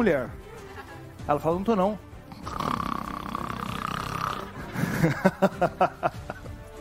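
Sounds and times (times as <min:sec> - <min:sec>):
speech: 0:00.0 - 0:00.4, 0:01.3 - 0:02.7, 0:05.0 - 0:06.3
buzzing snore: 0:02.2 - 0:04.9
laughter: 0:04.6 - 0:06.6.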